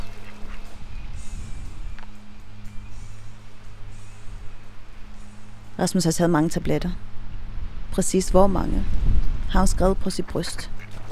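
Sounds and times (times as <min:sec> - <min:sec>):
ducks quacking at a duck pond in a plantation: 0:00.0 - 0:00.8, 0:10.4 - 0:11.1
steady low outdoor hum: 0:00.0 - 0:11.1
speech: 0:05.8 - 0:07.1, 0:08.0 - 0:10.8.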